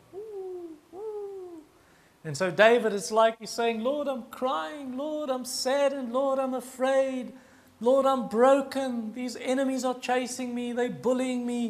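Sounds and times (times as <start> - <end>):
doves in terebinth trees cooing mournfully: 0.0 - 1.7
speech: 2.2 - 11.6.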